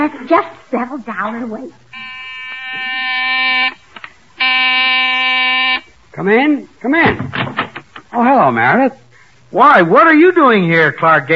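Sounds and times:
speech: 0:00.1 - 0:02.0, 0:06.2 - 0:11.3
loud harsh electric door buzzer: 0:01.9 - 0:05.9.

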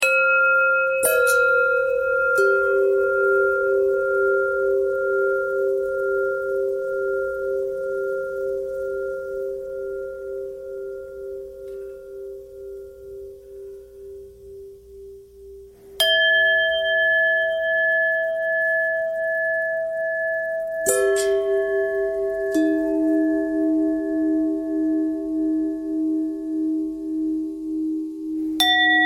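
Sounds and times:
long bell thread noise: 0:00.0 - 0:27.1, 0:28.4 - 0:29.0.

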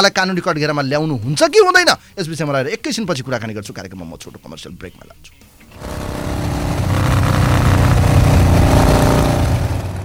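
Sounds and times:
speech: 0:00.0 - 0:06.0
new motorcycle engine revving: 0:05.7 - 0:10.0.

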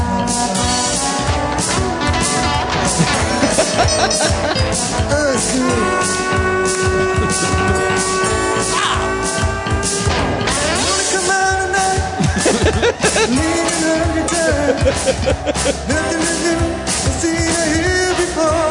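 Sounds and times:
badly played off-key saxophone melody: 0:00.0 - 0:11.2
drums: 0:00.0 - 0:18.7
keyboards: 0:00.0 - 0:18.7
loud busy band playing: 0:00.0 - 0:18.7
laughter: 0:02.8 - 0:09.1, 0:12.1 - 0:16.5.

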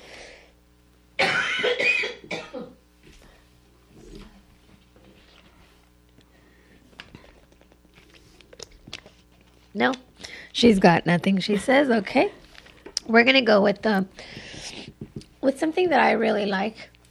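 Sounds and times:
loud harsh coughing fit: 0:01.2 - 0:02.8
speech: 0:09.8 - 0:10.0, 0:10.6 - 0:12.4, 0:13.1 - 0:14.4, 0:15.5 - 0:16.9.

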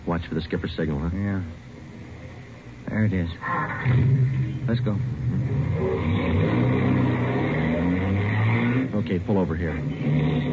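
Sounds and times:
speech: 0:00.2 - 0:01.7, 0:02.9 - 0:06.7, 0:09.0 - 0:10.5
car engine starting and revving: 0:03.4 - 0:10.5.

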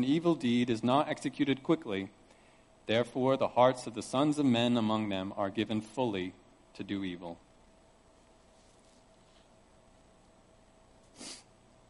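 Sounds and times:
speech: 0:00.0 - 0:02.2, 0:02.9 - 0:07.4
nasal sniff: 0:11.1 - 0:11.5.

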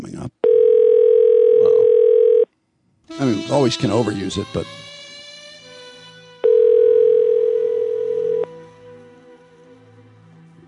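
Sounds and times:
electronic telephone ring tone on an outgoing call: 0:00.4 - 0:02.5, 0:06.4 - 0:08.5
speech: 0:03.2 - 0:04.8.

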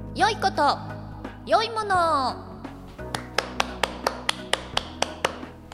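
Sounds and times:
speech: 0:00.2 - 0:00.9, 0:01.5 - 0:02.5
inserted applause sound effect of crisp hand claps: 0:03.0 - 0:05.7.

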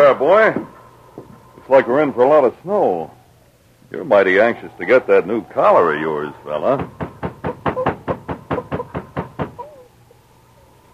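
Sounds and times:
speech: 0:00.1 - 0:00.8, 0:01.7 - 0:03.2, 0:03.9 - 0:07.0
firm knocks on a wooden cabin door: 0:06.8 - 0:09.6.

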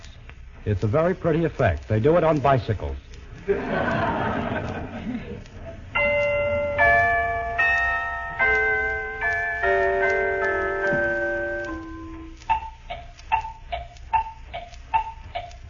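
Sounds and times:
clock ticking: 0:00.0 - 0:15.6
speech: 0:00.6 - 0:04.2
laughter: 0:03.3 - 0:06.0
bright bell-like chiming notes: 0:06.0 - 0:12.7.

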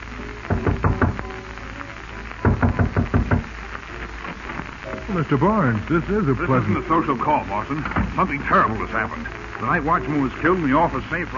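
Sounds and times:
firm rapid knocking on a wooden door: 0:00.5 - 0:01.2, 0:02.4 - 0:03.5
speech: 0:05.2 - 0:11.3.

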